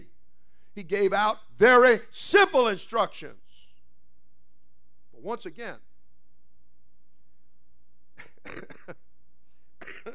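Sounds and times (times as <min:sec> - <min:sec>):
speech: 0:00.8 - 0:03.4, 0:05.2 - 0:05.9, 0:08.4 - 0:09.0
short faint coughs: 0:08.2 - 0:09.0, 0:09.8 - 0:10.1.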